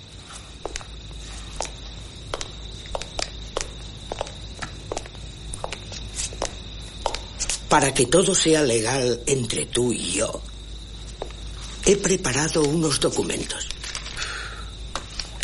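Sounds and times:
footsteps of a man walking across an office toward his desk: 0.0s - 7.6s, 11.0s - 11.8s
speech: 7.7s - 10.5s, 11.9s - 13.8s.

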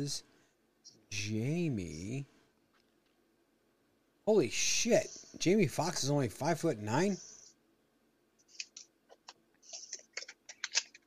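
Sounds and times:
speech: 0.0s - 0.3s, 1.1s - 2.4s, 4.3s - 7.3s
typing on a computer keyboard: 8.6s - 11.0s.

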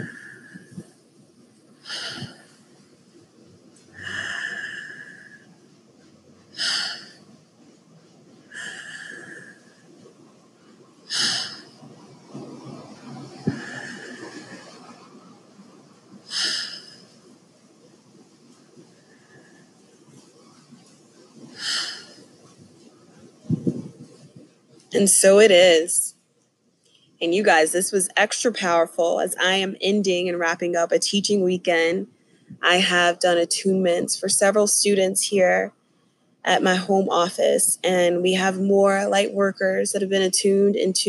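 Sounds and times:
deep slow breathing during a guided healing practice: 0.0s - 1.0s, 1.8s - 2.7s, 3.9s - 5.6s, 6.5s - 7.8s, 8.5s - 10.0s, 11.1s - 11.9s, 13.4s - 15.1s, 16.3s - 17.2s, 21.5s - 22.4s
speech: 24.9s - 26.0s, 27.2s - 35.8s, 36.4s - 41.0s.

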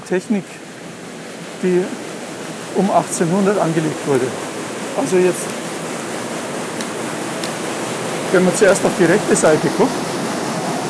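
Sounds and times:
speech: 0.1s - 0.7s, 1.6s - 2.0s, 2.8s - 5.6s, 8.3s - 10.1s
loud steady rushing water: 0.4s - 10.8s
water wheel of machinery built around 1800 turning: 4.1s - 9.6s.

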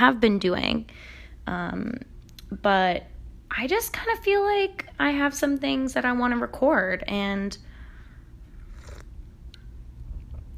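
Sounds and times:
speech: 0.0s - 7.7s
low rumble: 0.0s - 10.5s
slurping sip of hot peppermint tea: 8.6s - 9.1s.

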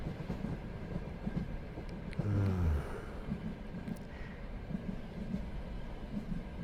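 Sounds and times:
train wheels clattering on rails: 0.0s - 6.6s
deep groan of a train: 2.2s - 3.3s.

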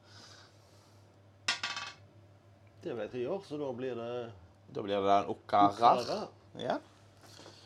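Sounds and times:
die rolled across a hard tabletop: 1.5s - 2.0s
speech: 2.8s - 6.9s.

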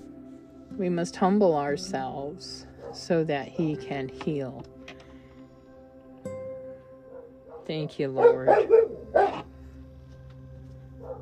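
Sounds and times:
speech: 0.8s - 4.8s, 7.7s - 9.2s
dog barking: 2.8s - 3.0s, 7.5s - 9.5s, 11.0s - 11.1s.

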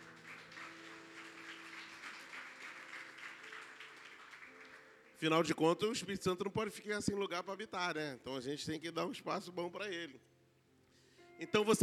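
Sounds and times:
church audience applauding: 0.0s - 5.6s
speech: 5.2s - 10.3s, 11.4s - 11.8s.

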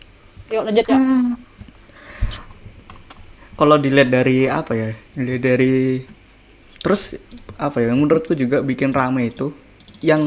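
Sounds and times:
speech: 0.5s - 1.5s, 3.6s - 6.2s, 6.8s - 10.2s
typing on a computer keyboard: 8.3s - 10.2s.

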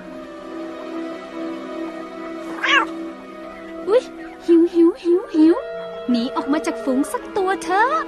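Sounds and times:
steady humming musical background: 0.0s - 8.0s
wild cat meowing: 2.5s - 3.0s
speech: 6.5s - 8.0s.

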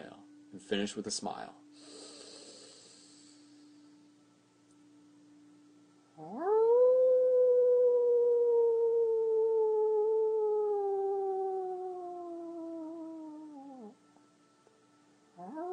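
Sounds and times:
speech: 0.0s - 1.9s
person howling like a wolf during a guided meditation: 6.2s - 14.0s, 15.4s - 15.7s.

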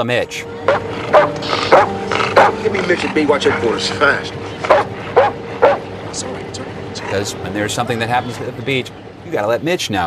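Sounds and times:
speech: 0.0s - 4.9s, 6.2s - 10.0s
dog barking sharply at people: 0.7s - 2.6s, 4.6s - 5.8s.

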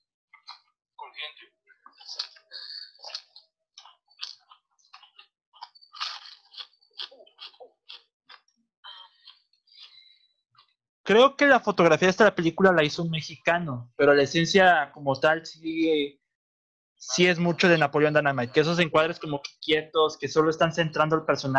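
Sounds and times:
crunchy toasted bread being bitten and chewed: 1.8s - 10.8s
speech: 11.1s - 16.2s, 17.0s - 21.5s.

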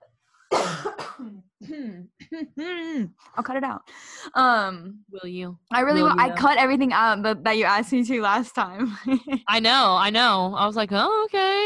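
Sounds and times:
person coughing: 0.5s - 1.5s
speech: 2.4s - 11.6s.

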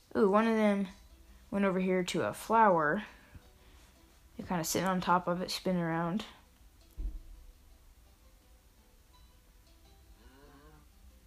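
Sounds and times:
speech: 0.2s - 3.2s, 4.4s - 6.4s
dull thump: 7.0s - 7.4s
cow mooing in a video game: 10.2s - 10.9s.

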